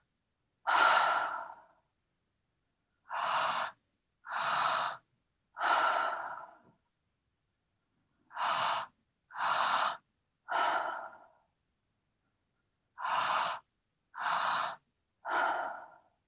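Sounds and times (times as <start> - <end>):
deep slow breathing into belly and chest in a guided breathing exercise: 0.6 - 1.9, 3.0 - 6.8, 8.3 - 11.6, 12.9 - 16.2.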